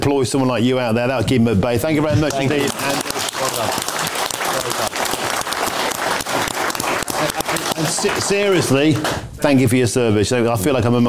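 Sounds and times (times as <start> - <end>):
speech: 0.0 - 4.2, 8.0 - 11.0
audience applauding: 2.3 - 9.3.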